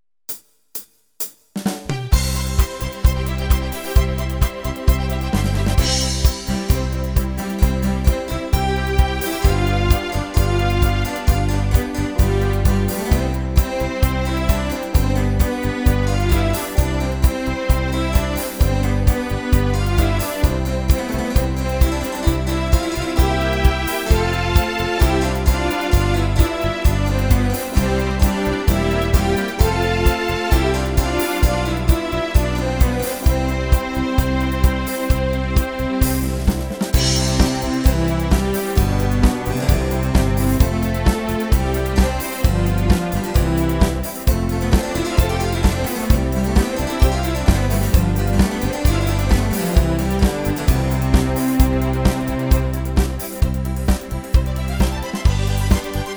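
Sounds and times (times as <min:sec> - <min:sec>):
accordion playing baroque music: 0:02.1 - 0:56.1.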